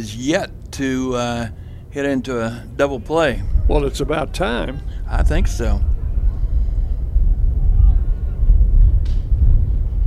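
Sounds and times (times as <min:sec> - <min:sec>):
speech: 0:00.0 - 0:05.9
faint crowd murmur: 0:02.4 - 0:10.0
wind gusts buffeting a microphone: 0:02.6 - 0:10.0.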